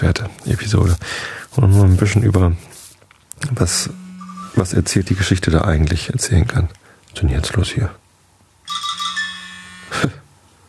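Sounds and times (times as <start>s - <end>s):
speech: 0.0s - 2.7s, 3.4s - 4.0s, 4.6s - 8.0s, 10.0s - 10.2s
mobile phone ringtone playing a short electronic melody: 3.8s - 4.6s, 8.7s - 10.0s.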